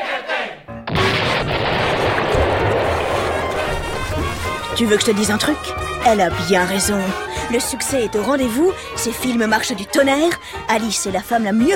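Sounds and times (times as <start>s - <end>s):
explosion of a real boat being blown up for a film scene: 0.8s - 8.0s
speech: 4.8s - 11.7s.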